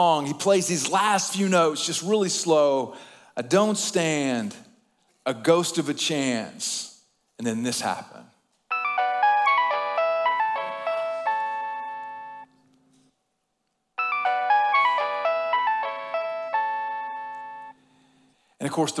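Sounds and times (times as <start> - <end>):
speech: 0.0 - 4.6, 5.2 - 8.3, 18.8 - 18.9
bright electronic cell phone ringtone melody: 8.7 - 12.5, 14.0 - 17.8.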